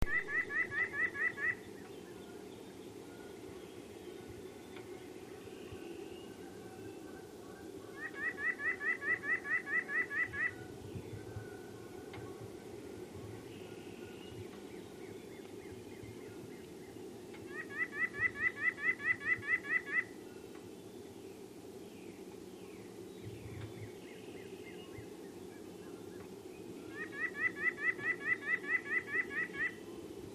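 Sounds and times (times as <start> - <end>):
nuthatch calling: 0.0 - 2.0, 7.9 - 10.7, 17.4 - 20.2, 26.9 - 29.8.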